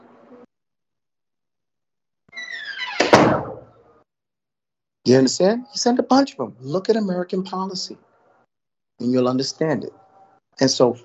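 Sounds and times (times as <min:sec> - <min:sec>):
door creaking and groaning: 0:02.3 - 0:03.8
heavy bang against a door: 0:03.0 - 0:03.7
speech: 0:05.0 - 0:08.1, 0:09.0 - 0:10.0, 0:10.6 - 0:11.0.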